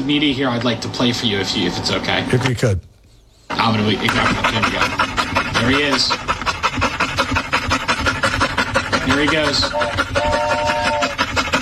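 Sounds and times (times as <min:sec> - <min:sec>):
speech: 0:00.0 - 0:02.9, 0:03.5 - 0:06.9, 0:09.0 - 0:10.6
dog panting: 0:03.4 - 0:11.5.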